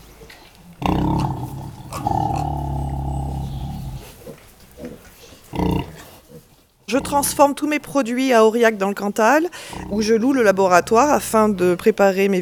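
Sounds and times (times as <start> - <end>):
outdoor farm pigs grunting: 0.8 - 7.5, 9.6 - 12.0
speech: 6.9 - 12.4.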